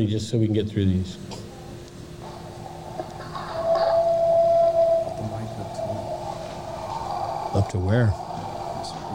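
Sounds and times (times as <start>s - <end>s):
speech: 0.0s - 1.4s, 7.6s - 8.3s
hissy, noisy recording: 0.0s - 9.1s
mountain lion answering cries: 2.9s - 8.8s
recorded alpha male animal call: 3.2s - 8.8s.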